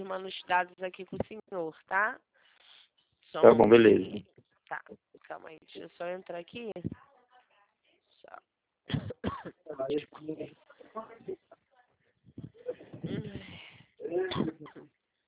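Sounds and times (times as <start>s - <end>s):
speech: 0.0s - 2.3s, 3.3s - 7.0s, 8.2s - 11.4s, 13.0s - 13.5s
coughing: 8.9s - 9.7s, 14.0s - 14.9s
harsh throat clearing: 14.1s - 14.9s.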